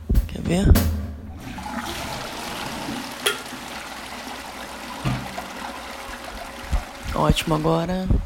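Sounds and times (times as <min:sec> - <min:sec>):
speech: 0:00.4 - 0:01.0, 0:07.2 - 0:08.2
toilet flushing in a reverberant bathroom: 0:01.3 - 0:08.0
small knocks as the toilet bowl drains: 0:01.4 - 0:07.6.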